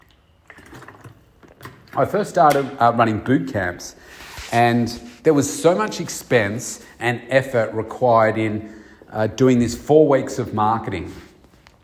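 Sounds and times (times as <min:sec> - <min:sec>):
person sipping water: 0:00.0 - 0:02.0
soft swallowing gulps: 0:00.0 - 0:02.0
speech: 0:02.0 - 0:11.2.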